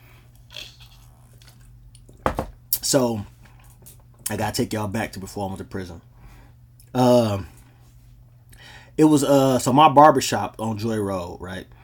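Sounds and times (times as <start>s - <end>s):
slurp of tea being sipped: 0.4s - 1.5s
speech: 2.9s - 3.3s, 4.3s - 6.1s, 6.9s - 7.6s, 9.0s - 11.8s.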